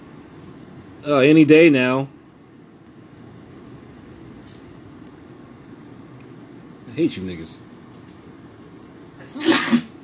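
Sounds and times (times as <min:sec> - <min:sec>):
speech: 0:01.0 - 0:02.2, 0:07.0 - 0:07.7
person sneezing: 0:09.2 - 0:10.0.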